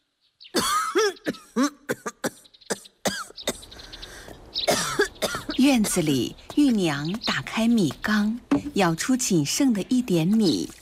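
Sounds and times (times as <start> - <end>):
elderly woman coughing in harsh hacking bursts: 0.6 - 3.7, 4.7 - 5.6
speech: 5.7 - 10.8.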